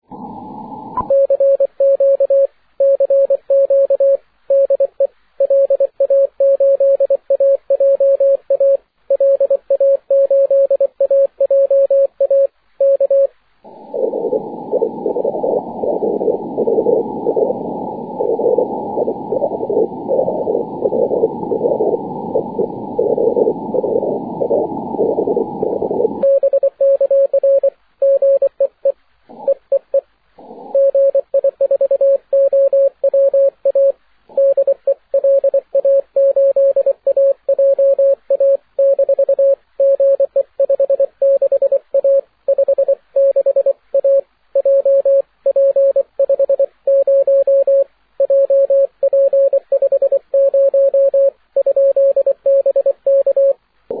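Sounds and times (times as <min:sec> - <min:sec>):
6m CW morse code signal with aurora distortion: 0:01.0 - 0:13.3, 0:14.0 - 0:30.0, 0:30.7 - 0:53.6.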